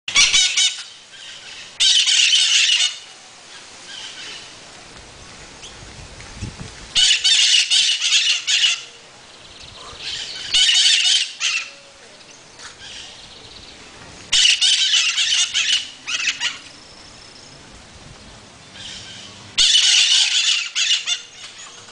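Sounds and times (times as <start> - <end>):
parrot squawking: 0.1 - 0.9, 1.8 - 3.0, 7.0 - 8.9, 10.0 - 11.7, 14.3 - 16.7, 18.8 - 21.7
background noise: 0.1 - 21.9.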